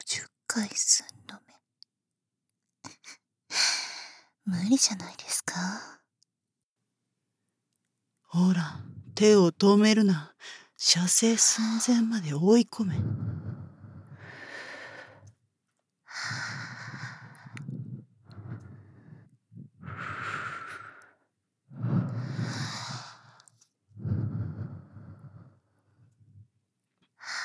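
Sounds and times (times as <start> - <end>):
speech: 0.0 - 1.2, 4.5 - 6.0, 8.3 - 13.5
breathy exhalations blown onto a listener's ear: 13.0 - 15.3, 16.1 - 25.6.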